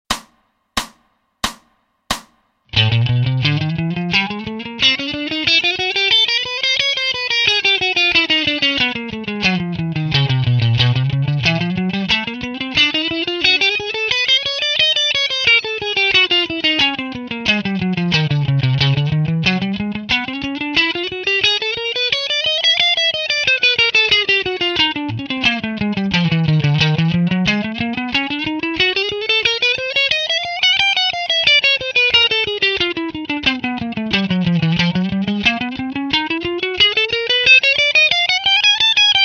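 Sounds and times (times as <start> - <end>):
slow sixteenth-note guitar picking with fretting hand in sync: 2.7 - 39.2.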